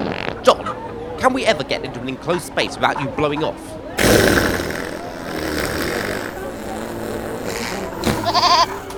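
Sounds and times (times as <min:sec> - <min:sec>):
voices murmuring: 0:00.1 - 0:08.9
speech: 0:01.3 - 0:04.4
goat bleating: 0:07.4 - 0:08.9.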